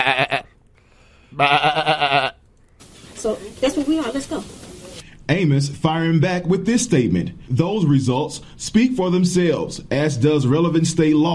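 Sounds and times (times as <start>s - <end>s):
sheep bleating: 0.0s - 0.5s, 1.4s - 2.4s
speech: 1.4s - 1.9s, 5.4s - 11.3s.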